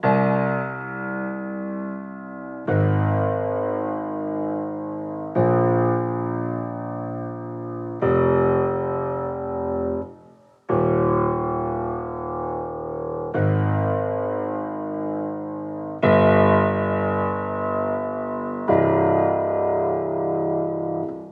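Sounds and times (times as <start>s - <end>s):
piano playing in C minor: 0.0s - 21.3s.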